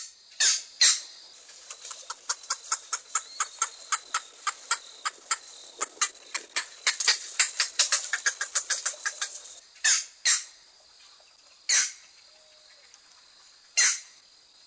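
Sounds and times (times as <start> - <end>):
green heron hoarse calls: 0.4 - 10.0.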